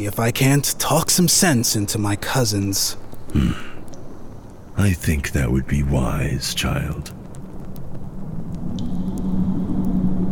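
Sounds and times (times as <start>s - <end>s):
speech: 0.0s - 3.7s, 4.8s - 7.2s
faint sharp crackles: 0.0s - 10.2s
low rumble of wind and rain: 0.0s - 10.2s.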